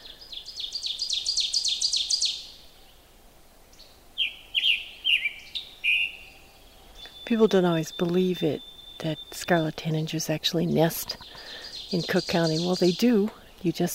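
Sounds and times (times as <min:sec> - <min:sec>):
ovenbirds and song sparrows chirping in woodland: 0:00.0 - 0:13.9
ovenbird and song sparrow sweet song phrases: 0:07.0 - 0:13.9
speech: 0:07.3 - 0:13.9.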